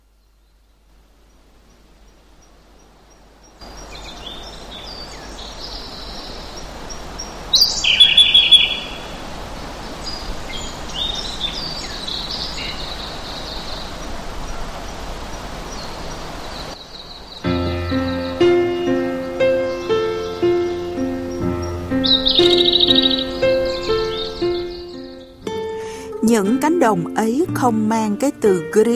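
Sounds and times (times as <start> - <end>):
steady outdoor hiss: 0.0 - 28.9
birds chirping in open fields: 1.2 - 28.9
tuneful passage of repeating bird notes: 7.7 - 9.3, 17.4 - 28.9
speech: 26.4 - 28.9.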